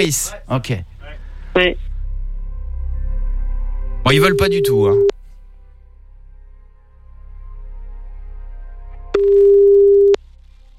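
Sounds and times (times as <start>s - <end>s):
speech: 0.0s - 0.9s, 1.6s - 1.9s, 4.0s - 5.2s
telephone ringing tone beep on a call: 4.3s - 5.1s, 9.2s - 10.2s.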